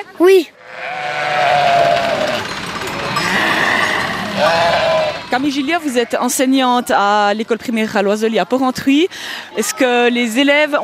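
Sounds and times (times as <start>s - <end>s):
speech: 0.0s - 1.0s, 4.4s - 10.8s
goat bleating: 0.6s - 6.3s.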